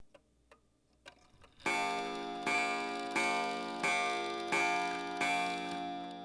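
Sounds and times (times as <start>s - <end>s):
steeple bells: 1.6s - 6.2s.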